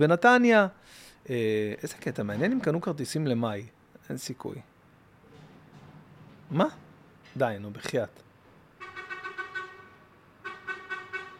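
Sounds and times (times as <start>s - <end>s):
speech: 0.0s - 4.7s, 6.5s - 6.8s, 7.4s - 8.2s
truck horn honking in the street: 8.8s - 11.3s.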